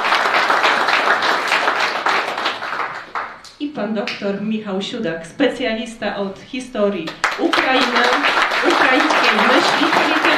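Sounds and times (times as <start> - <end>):
audience applause from a sizable crowd: 0.0 - 3.4, 7.1 - 10.3
speech: 3.8 - 10.3.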